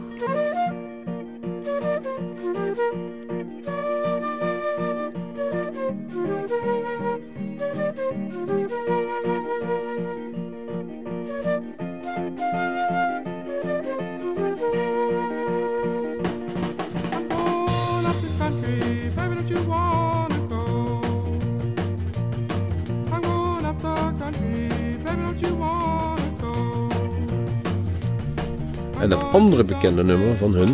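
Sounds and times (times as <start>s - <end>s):
breezy flute melody in a blues rock song: 0.0s - 22.0s, 23.0s - 30.7s
guitar in a blues rock band: 0.0s - 30.7s
drums in a blues rock band: 15.5s - 30.7s
bass in a blues rock band: 16.5s - 30.7s
speech: 29.3s - 30.7s.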